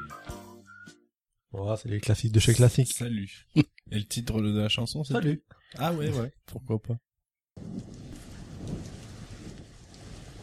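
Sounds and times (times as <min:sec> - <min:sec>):
speech: 0:01.5 - 0:07.0
steady dense rain falling: 0:07.6 - 0:10.4.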